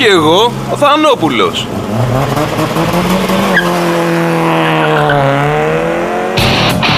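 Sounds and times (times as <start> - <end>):
speech: 0.0 - 4.0
car engine accelerating: 0.2 - 6.9
tires squealing against the road: 1.6 - 6.9.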